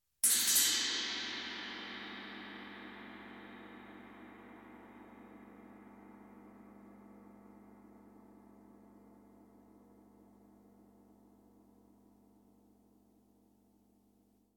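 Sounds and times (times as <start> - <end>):
suspenseful cymbal: 0.2 - 11.2.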